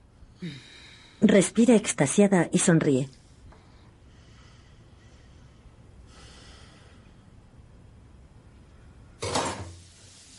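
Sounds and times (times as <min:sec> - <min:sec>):
speech: 0:00.4 - 0:03.2
clatter of dishes, pots and pans being washed: 0:09.2 - 0:09.7.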